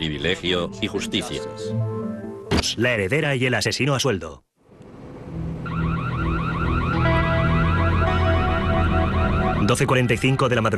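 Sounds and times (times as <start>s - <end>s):
speech: 0.1s - 2.0s, 2.6s - 4.5s, 9.6s - 10.7s
burglar alarm warbling in Paradise Valley Arizona: 5.6s - 10.7s.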